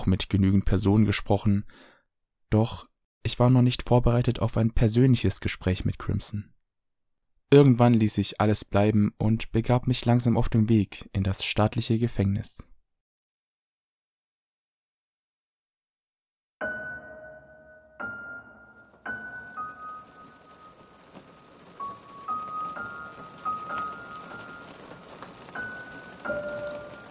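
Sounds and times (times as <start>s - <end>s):
speech: 0.0s - 1.9s, 2.5s - 6.5s, 7.5s - 12.7s
rain falling on a prison building: 18.8s - 27.0s.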